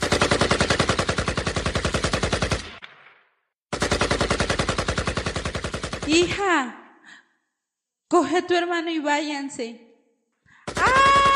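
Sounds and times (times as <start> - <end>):
rapid automatic gunfire: 0.0 - 2.8, 3.7 - 6.4, 10.7 - 11.3
speech: 6.1 - 6.8, 8.1 - 9.9.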